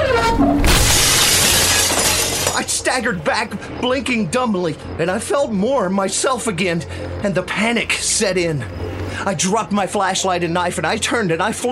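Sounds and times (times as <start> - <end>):
window glass shattering as window is wrenched open: 0.6 - 2.9
breaking glass shards scattering across the floor: 0.7 - 2.8
speech: 2.9 - 11.6.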